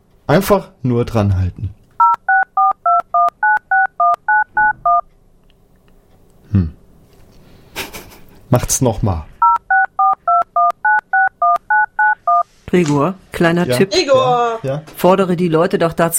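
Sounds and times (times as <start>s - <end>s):
speech: 0.3s - 1.8s, 6.5s - 6.8s, 8.5s - 9.3s, 12.7s - 16.1s
telephone touch-tone DTMF dialing beeps played on a radio broadcast: 2.0s - 5.0s, 9.4s - 12.4s.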